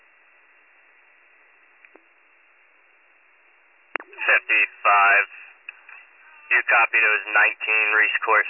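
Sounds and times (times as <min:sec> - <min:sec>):
radio click: 0:03.9 - 0:05.0, 0:05.6 - 0:06.1
speech: 0:04.3 - 0:05.4, 0:06.5 - 0:08.4.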